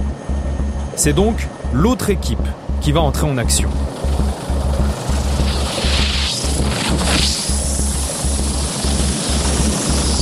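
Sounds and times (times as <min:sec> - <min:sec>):
military helicopter rotor thumping during a vertical assault: 0:00.0 - 0:10.1
speech: 0:01.0 - 0:04.4.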